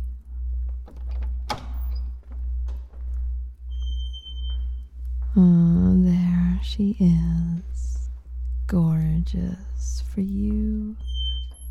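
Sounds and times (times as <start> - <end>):
steady pulsing low hum: 0.0 - 11.6
door opening with a sharp clack and rattle: 0.8 - 4.8
speech: 5.4 - 8.0, 8.7 - 11.1.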